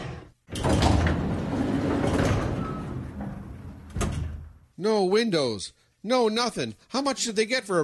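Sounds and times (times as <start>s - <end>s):
heavy elevator door sliding shut: 0.5s - 4.6s
mechanical rattling and clunking: 0.5s - 4.7s
speech: 4.8s - 7.8s.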